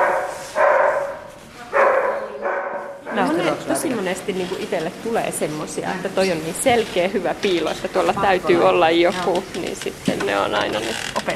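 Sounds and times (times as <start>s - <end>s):
search dog barking to signal a find: 0.0s - 3.6s
speech: 3.2s - 11.3s.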